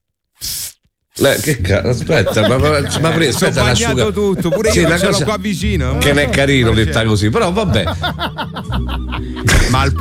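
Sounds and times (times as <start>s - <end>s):
person imitating an anti-mosquito repellent spray hiss: 0.4s - 1.5s
speech: 1.2s - 10.0s
laughter: 1.9s - 10.0s.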